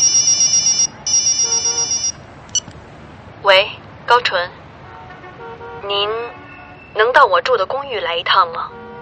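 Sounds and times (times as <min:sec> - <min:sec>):
telephone ringing: 0:00.0 - 0:02.2
short beep as the telephone is answered: 0:00.0 - 0:02.7
speech: 0:05.9 - 0:06.3, 0:07.0 - 0:08.8.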